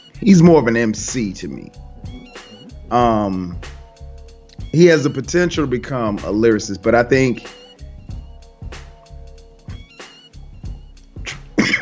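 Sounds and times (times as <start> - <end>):
speech: 0.2 - 1.8, 2.9 - 3.7, 4.7 - 7.6
brief throat sound: 1.8 - 3.6
person coughing in rough hacks: 11.6 - 11.7.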